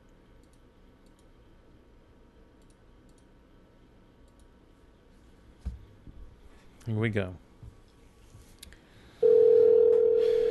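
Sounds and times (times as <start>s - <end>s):
speech: 6.9s - 7.5s
phone ringback tone of an outgoing call: 9.2s - 10.4s.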